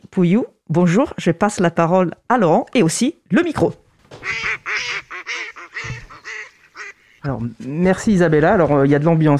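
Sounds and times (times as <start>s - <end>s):
speech: 0.2s - 4.6s, 7.2s - 9.3s
ducks quacking: 4.1s - 7.3s.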